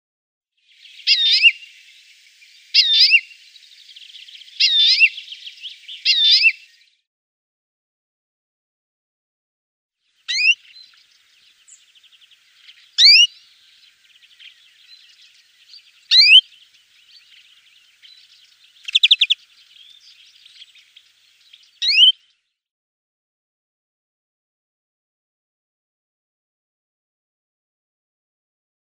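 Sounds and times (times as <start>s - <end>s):
European greenfinch calls: 0.9s - 1.8s, 2.7s - 6.8s, 10.3s - 22.2s.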